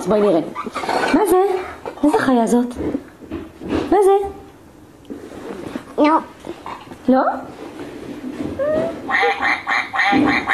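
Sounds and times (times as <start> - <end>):
speech: 0.0 - 3.0, 3.9 - 4.4, 6.0 - 7.6
duck quacking: 9.1 - 10.5.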